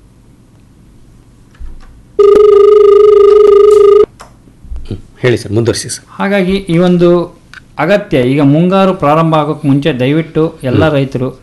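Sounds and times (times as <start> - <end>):
telephone ringing with an incoming call: 2.2 - 4.1
speech: 5.2 - 11.4.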